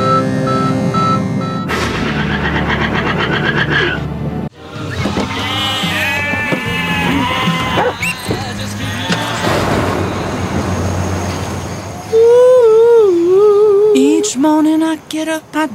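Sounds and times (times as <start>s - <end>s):
steady rumbling backdrop: 0.0s - 15.7s
sheep bleating in a commercial: 4.6s - 9.5s
speech: 15.2s - 15.7s.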